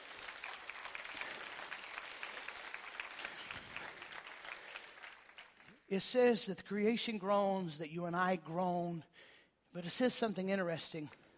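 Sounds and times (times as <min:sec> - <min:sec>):
audience clapping hands in praise: 0:00.0 - 0:06.3
speech: 0:05.9 - 0:11.2.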